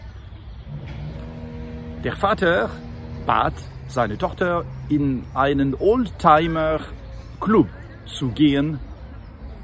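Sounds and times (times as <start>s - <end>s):
old car engine revving: 0.7s - 5.0s
speech: 2.0s - 8.9s.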